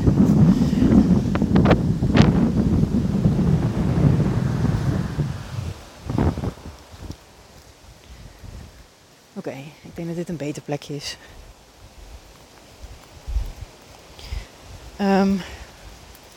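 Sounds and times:
strong wind buffeting the microphone outdoors: 0.0s - 9.0s, 11.1s - 16.3s
speech: 10.0s - 11.4s, 15.0s - 15.6s.

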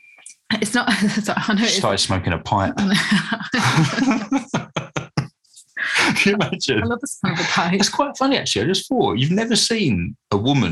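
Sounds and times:
speech: 0.6s - 4.6s, 6.2s - 10.7s
laughter: 0.9s - 5.2s, 5.8s - 10.7s
woman with a lingering cough coughing: 3.6s - 4.3s, 7.3s - 7.8s.

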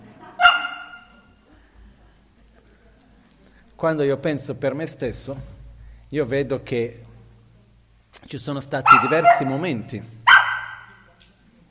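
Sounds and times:
small female dog yipping for attention: 0.4s - 1.2s, 8.9s - 9.6s, 10.3s - 11.0s
speech: 3.8s - 7.1s, 8.3s - 10.2s.

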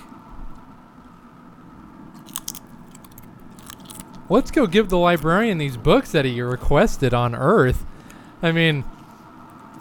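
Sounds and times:
biting and chewing crunchy food into the microphone: 2.1s - 5.4s
speech: 4.3s - 8.9s.

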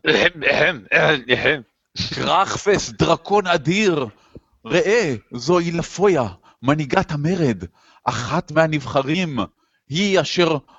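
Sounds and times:
voice imitating coughing from smoke: 0.0s - 2.4s
speech: 0.0s - 10.7s.

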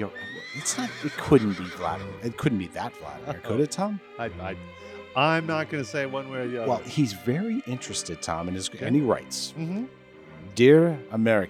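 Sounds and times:
horse neighing: 0.0s - 2.2s
speech: 0.0s - 10.0s, 10.6s - 11.4s.

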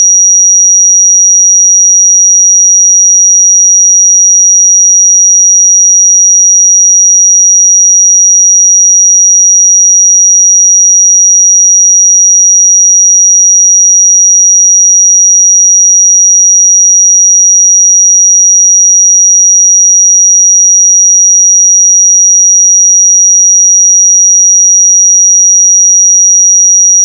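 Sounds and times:
5756 Hz pure sine tone: 0.0s - 27.0s.

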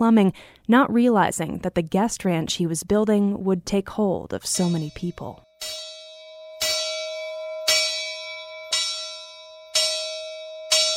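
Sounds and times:
speech: 0.0s - 5.8s
breakfast bell ringing at a ranch lodge: 4.6s - 10.9s.

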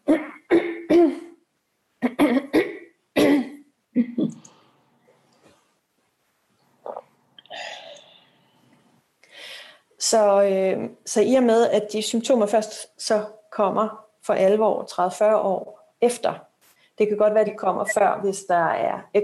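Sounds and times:
person clearing throat: 0.0s - 1.4s, 2.0s - 4.5s
speech: 10.1s - 19.2s.

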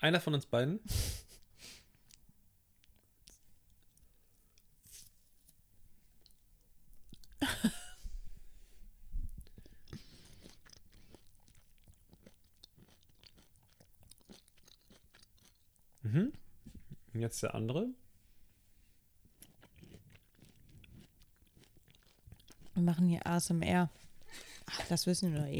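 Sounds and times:
speech: 0.0s - 1.3s, 17.2s - 18.0s, 22.8s - 24.0s, 24.7s - 25.5s
person smacking and chewing while eating: 2.0s - 4.7s, 6.2s - 7.4s, 9.1s - 17.1s, 19.2s - 22.9s
quiet breathing: 7.9s - 10.6s, 23.9s - 24.8s.

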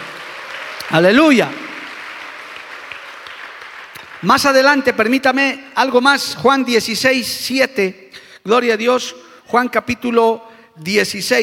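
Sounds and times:
audience applauding: 0.0s - 4.8s
speech: 0.9s - 1.6s, 4.2s - 11.4s.

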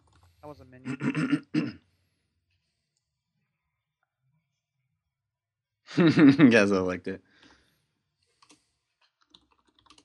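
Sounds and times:
speech: 0.4s - 1.6s, 6.0s - 7.3s
man clearing his throat while playing a video game: 0.9s - 1.8s.

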